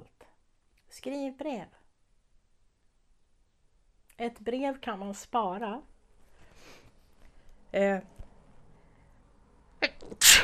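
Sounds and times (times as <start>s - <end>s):
speech: 1.0s - 1.8s, 4.2s - 5.9s, 7.7s - 8.1s
person sneezing: 9.8s - 10.4s.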